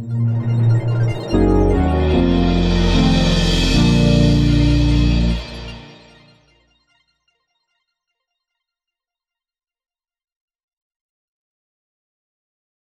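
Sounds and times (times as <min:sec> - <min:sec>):
retro brassy sound: 0:00.1 - 0:06.3.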